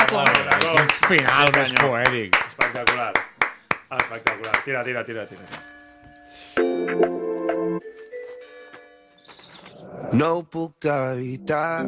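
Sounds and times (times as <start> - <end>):
speech: 0.1 - 3.3, 3.9 - 7.2, 10.1 - 11.8
bells ringing: 5.0 - 6.6.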